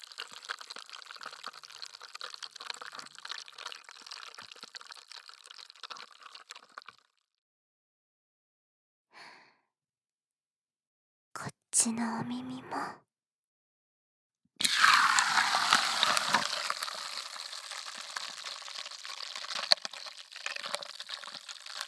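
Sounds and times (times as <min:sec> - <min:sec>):
fizzing bubbling liquid: 0:00.0 - 0:07.2, 0:14.6 - 0:21.8
speech: 0:11.8 - 0:13.0.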